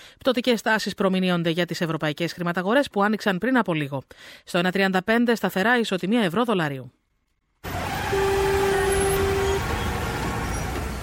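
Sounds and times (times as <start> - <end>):
speech: 0.2 - 7.0
dense road traffic noise: 7.6 - 11.0
sustained horn-like tone: 7.6 - 11.0.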